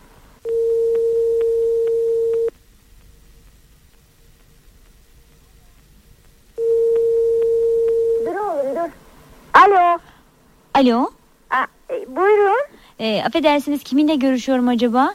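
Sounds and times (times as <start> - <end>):
faint telephone line hiss: 0.0 - 15.1
telephone ringing tone heard down the line: 0.5 - 2.5, 6.6 - 8.4
speech: 10.8 - 15.1.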